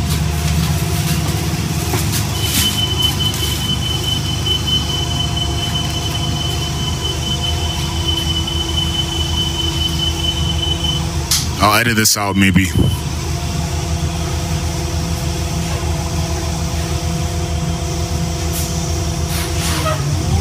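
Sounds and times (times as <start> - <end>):
moving bus rumbling heard from inside the cabin: 0.0 - 20.3
faint high whining tones: 2.2 - 14.3
speech: 11.8 - 13.1.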